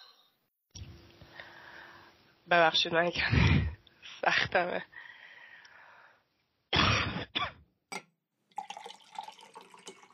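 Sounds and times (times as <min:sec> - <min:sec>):
speech: 0:02.5 - 0:03.6, 0:04.2 - 0:05.0
woman faintly clearing her throat: 0:06.7 - 0:07.6
quiet clinks of a glass: 0:07.9 - 0:10.1
soft trickle of water in a glass: 0:08.5 - 0:10.1.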